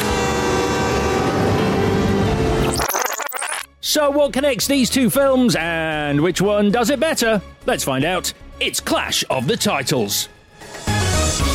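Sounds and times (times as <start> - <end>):
train horn blaring: 0.0 - 2.6
speech: 3.9 - 11.5.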